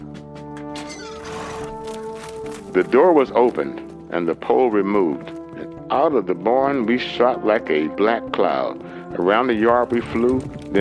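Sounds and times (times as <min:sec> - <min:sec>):
unbroken ill-tempered stallion neighing: 0:00.8 - 0:02.2
speech: 0:02.8 - 0:05.3, 0:05.9 - 0:10.7.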